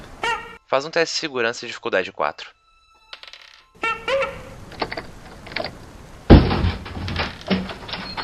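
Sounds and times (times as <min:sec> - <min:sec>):
speech: 0:00.7 - 0:02.6
wooden building entrance door creaking open: 0:03.1 - 0:03.8, 0:04.6 - 0:08.2
door clunks: 0:06.3 - 0:08.2.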